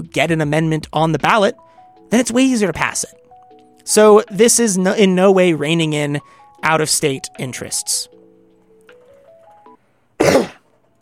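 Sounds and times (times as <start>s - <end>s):
speech: 0.0s - 3.2s, 3.9s - 8.2s
harsh throaty cough: 10.2s - 10.7s.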